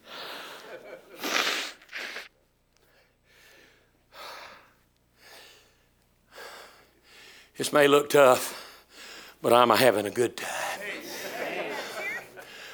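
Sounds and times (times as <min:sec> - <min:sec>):
preacher blowing his nose during a sermon: 0:01.1 - 0:02.4
speech: 0:07.6 - 0:08.6, 0:09.4 - 0:10.5
laughter: 0:10.5 - 0:12.7.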